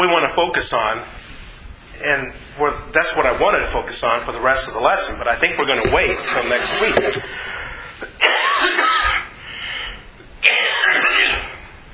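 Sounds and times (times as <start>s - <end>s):
speech: 0.0s - 1.2s, 2.0s - 7.6s, 8.2s - 9.1s
person coughing harshly in a coughing fit: 8.2s - 9.2s, 10.4s - 11.5s.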